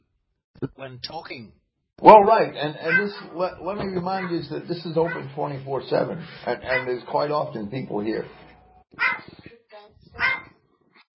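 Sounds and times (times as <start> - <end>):
speech: 0.6 - 9.4
dog barking: 2.8 - 3.3, 6.7 - 7.0, 9.0 - 9.3, 10.2 - 10.6
dog yelping and whining: 9.0 - 9.3, 10.2 - 10.5.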